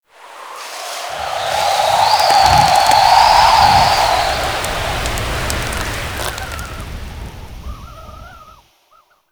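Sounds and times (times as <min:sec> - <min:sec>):
wind blowing debris in a settlement: 0:00.4 - 0:08.6.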